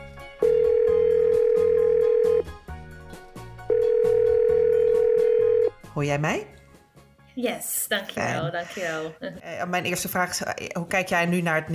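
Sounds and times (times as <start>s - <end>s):
ringing tone of an outgoing phone call: 0.4s - 2.5s, 3.7s - 5.7s
speech: 6.0s - 6.6s, 7.4s - 11.7s.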